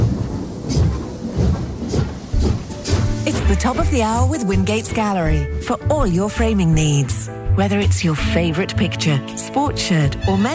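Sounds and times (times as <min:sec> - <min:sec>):
sharp clacking hits of a train: 0:00.0 - 0:07.2
train chugging away from a station: 0:00.0 - 0:08.5
speech: 0:03.3 - 0:10.5.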